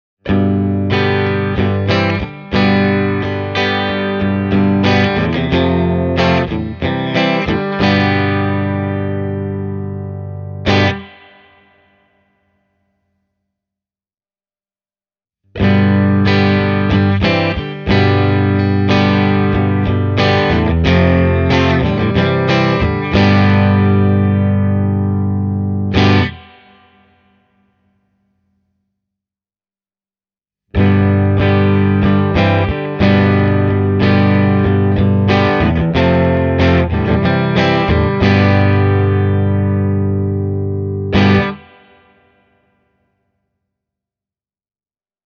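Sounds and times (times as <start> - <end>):
Fender Telecaster '62 Custom Reissue electric guitar through a preamp: 0.2 - 11.8, 15.6 - 27.0, 30.7 - 42.1.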